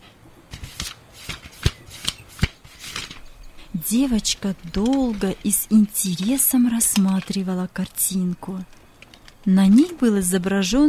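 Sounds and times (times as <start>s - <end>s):
paper snapping: 0.5s - 3.2s
book pages being turned: 0.5s - 7.9s
speech: 3.8s - 8.8s, 9.4s - 10.8s.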